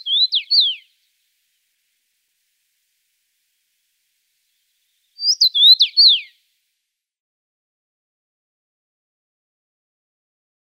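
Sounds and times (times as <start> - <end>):
common rosefinch whistled song: 0.0 - 1.0, 4.9 - 6.4.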